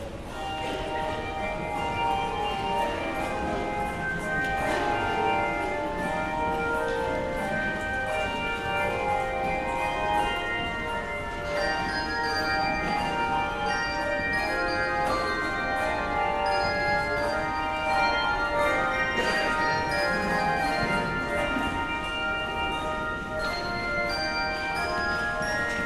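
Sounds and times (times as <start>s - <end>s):
handbells ringing: 0.0s - 25.8s.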